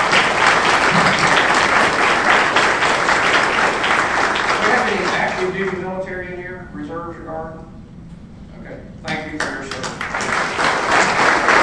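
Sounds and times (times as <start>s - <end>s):
dense applause from a large crowd: 0.0s - 5.8s, 9.4s - 11.6s.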